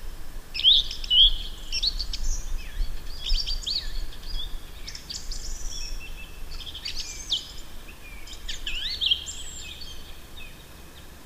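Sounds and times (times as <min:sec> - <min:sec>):
song thrush Turdus philomelos singing whistled and scratchy notes: 0:00.6 - 0:10.7.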